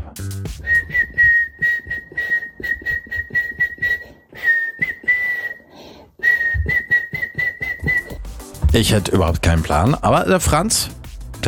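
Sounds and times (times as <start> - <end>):
speech: 0.2 - 1.1, 8.7 - 11.4
person whistling a catchy pop song melody: 0.6 - 8.4.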